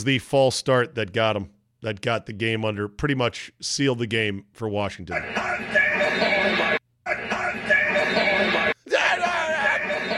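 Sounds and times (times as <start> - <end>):
speech: 0.0 - 5.7
laughter: 5.2 - 10.1
person screaming excitedly: 8.8 - 10.0.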